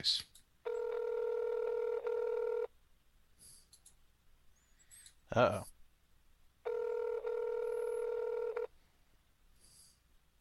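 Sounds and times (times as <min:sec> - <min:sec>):
speech: 0:00.0 - 0:00.3, 0:05.3 - 0:05.7
telephone ringing on a call: 0:00.6 - 0:02.7, 0:06.6 - 0:08.7.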